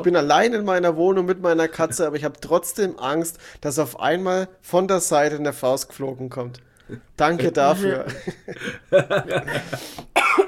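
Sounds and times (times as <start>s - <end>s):
speech: 0.0s - 10.1s
laughter: 7.7s - 10.0s
person coughing: 9.5s - 10.4s.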